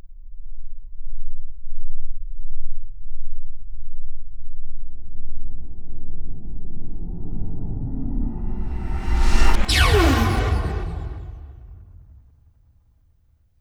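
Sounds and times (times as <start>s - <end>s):
starship flyby: 6.5s - 12.4s.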